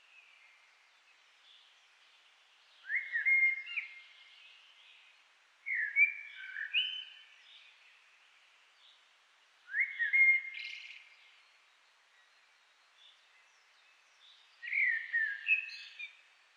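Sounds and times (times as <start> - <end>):
common blackbird Turdus merula singing low fluted warbled phrases: 2.8 - 4.9, 5.7 - 7.7, 9.7 - 11.3, 13.0 - 16.2.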